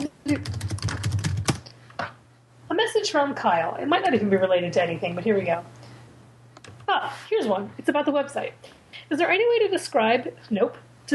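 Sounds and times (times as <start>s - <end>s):
speech: 0.3s - 0.7s, 3.0s - 5.8s, 6.9s - 11.1s
typing on a computer keyboard: 0.3s - 1.6s.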